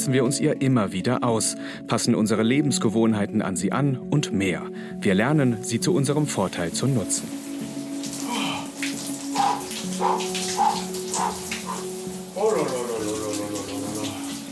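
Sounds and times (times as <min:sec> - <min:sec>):
speech: 0:00.0 - 0:07.5
shower running with cold water: 0:05.4 - 0:14.5.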